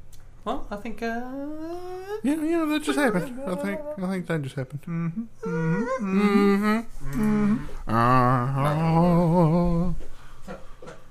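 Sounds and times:
speech: 0.4s - 10.0s
person imitating a cow mooing: 3.0s - 4.1s, 4.9s - 10.0s.

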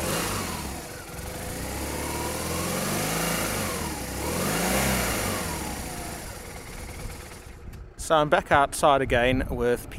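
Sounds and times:
police motorcycle engine revving: 0.0s - 7.8s
speech: 8.1s - 9.9s.

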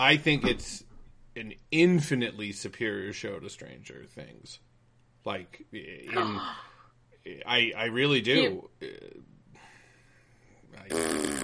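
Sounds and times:
speech: 0.0s - 9.3s, 10.7s - 11.4s
person blowing a wet buzzing raspberry to imitate a fart: 10.8s - 11.4s.

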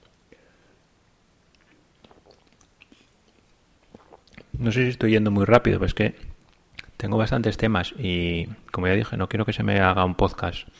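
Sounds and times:
soft wet mouth clicks: 1.5s - 4.6s, 6.4s - 7.0s
person taking a quiet sip of a drink: 1.6s - 4.6s
small swallowing noises: 1.6s - 4.6s
speech: 4.6s - 6.3s, 7.0s - 10.7s.

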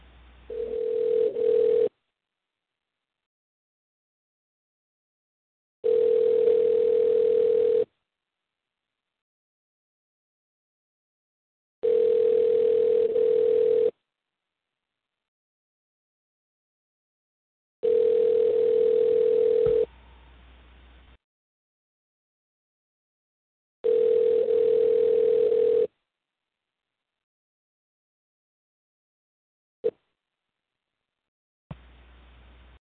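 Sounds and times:
phone line ringback tone on an outgoing call: 0.5s - 1.9s, 5.8s - 7.9s, 11.8s - 14.0s, 17.8s - 20.2s, 23.8s - 25.9s.

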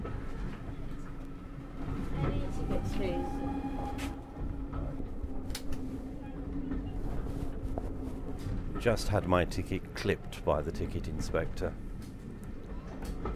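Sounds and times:
moving steam train carriage rumble from inside, running through countryside in the Forest of Dean: 0.0s - 13.3s
brief metallic squeals of steam train: 2.2s - 7.3s
speech: 2.7s - 4.2s, 8.8s - 11.9s.

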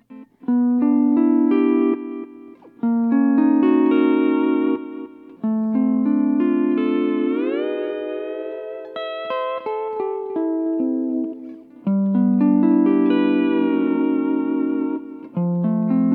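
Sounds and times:
electric guitar with delay and reverb played through an amp in a studio: 0.0s - 16.1s.

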